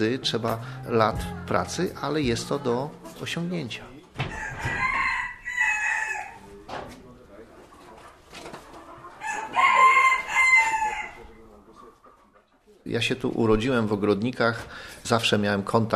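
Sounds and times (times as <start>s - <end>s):
speech: 0.0s - 4.8s, 12.9s - 15.9s
chickens clucking: 1.2s - 13.6s
rooster crowing: 4.3s - 6.4s, 9.2s - 11.2s.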